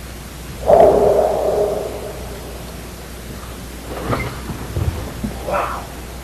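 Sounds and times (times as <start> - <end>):
Sasquatch roar: 0.6 - 2.8, 5.4 - 6.0.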